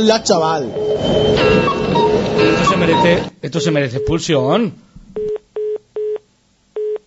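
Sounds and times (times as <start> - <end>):
speech: 0.0 - 4.9
telephone line tones from an unanswered call: 0.8 - 4.2, 5.2 - 6.2, 6.8 - 7.0.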